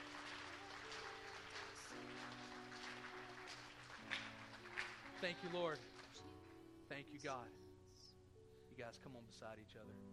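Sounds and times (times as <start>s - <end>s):
audience clapping in praise: 0.0s - 6.6s
speech: 5.2s - 6.3s, 6.9s - 7.6s, 8.8s - 10.1s.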